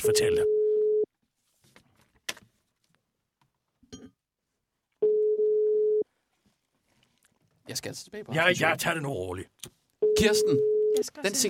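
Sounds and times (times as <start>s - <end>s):
speech: 0.0s - 0.6s, 7.7s - 11.4s
telephone tone when placing a call: 0.0s - 1.1s, 5.0s - 6.1s, 10.0s - 11.0s.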